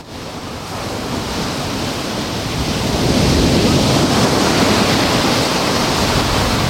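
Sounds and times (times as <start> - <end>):
gusting wind at the beach of La Rábita: 0.0 - 6.6
ocean surf roaring at the beach of La Rábita: 0.0 - 6.6.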